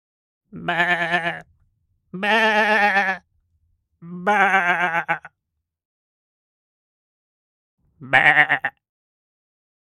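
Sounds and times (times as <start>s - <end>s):
sheep bleating: 0.5s - 1.5s, 2.1s - 3.3s, 4.0s - 5.4s, 8.0s - 8.8s.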